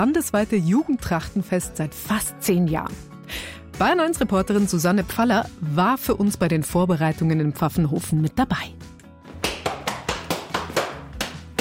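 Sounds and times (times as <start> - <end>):
speech: 0.0 - 8.8
boy's hands smacking thighs and shoes in a Schuhplattler dance: 9.2 - 11.5.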